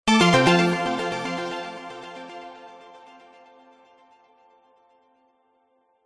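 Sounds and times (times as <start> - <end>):
game show time up digital synth jingle: 0.1 - 1.9.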